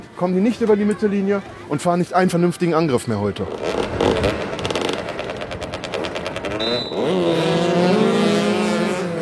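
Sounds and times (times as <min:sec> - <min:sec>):
speech: 0:00.2 - 0:04.0
motorcycle engines roaring and revving during a motoball match on asphalt: 0:03.4 - 0:09.2.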